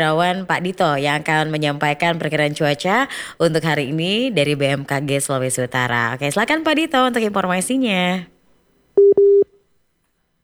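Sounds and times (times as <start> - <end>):
speech: 0.0 - 8.3
telephone line beeps while a call connects: 9.0 - 9.4.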